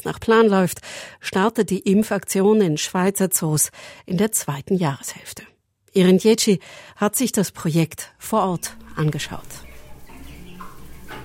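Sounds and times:
speech: 0.0 - 9.6
chickens clucking: 8.5 - 11.2.

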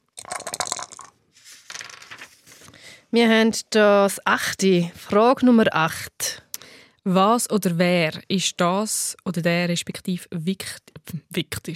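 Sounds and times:
three dice rattling inside a hand-held cup: 0.2 - 2.2
speech: 3.1 - 6.4, 7.0 - 11.7.

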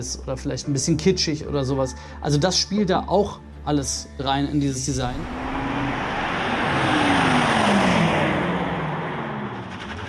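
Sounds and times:
speech: 0.0 - 5.5
electric car artificial engine sound synthetic hum: 4.9 - 10.0
tire and road rush: 4.9 - 10.0.

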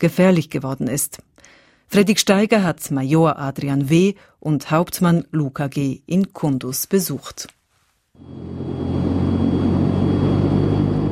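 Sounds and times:
speech: 0.0 - 7.6, 8.2 - 9.2
Transall military transport plane reducing thrust before landing at a military airfield: 8.2 - 11.1.

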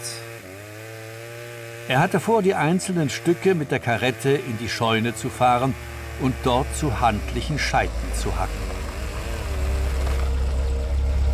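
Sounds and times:
speech: 1.9 - 8.7
Gendarmerie police car engine idling on the street: 5.3 - 11.3.

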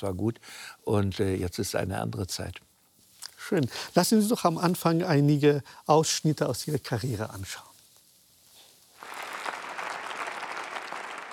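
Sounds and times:
speech: 0.0 - 2.7, 3.5 - 7.7
large crowd applauding in a standing ovation: 9.0 - 11.3.

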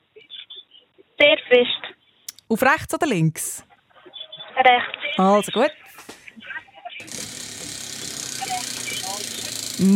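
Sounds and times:
speech: 1.3 - 1.9, 2.5 - 3.7, 4.6 - 6.1, 9.8 - 9.9
prize wheel spinning and clicking: 7.0 - 9.9.

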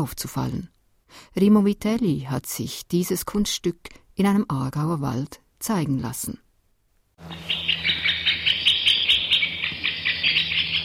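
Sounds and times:
speech: 0.0 - 6.4, 7.2 - 7.7
woodpecker call played through a loudspeaker in a forest: 7.2 - 10.8.

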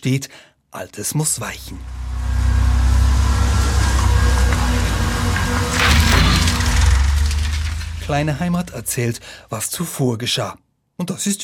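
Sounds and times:
speech: 0.0 - 2.0, 8.1 - 11.4
demolition excavator engine rumbling in a Zurich suburb: 1.4 - 9.4
rattling clattering burst: 1.6 - 9.4.

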